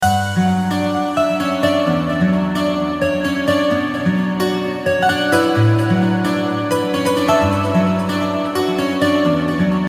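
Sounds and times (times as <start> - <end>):
romantic guitar ringtone: 0.0 - 9.8.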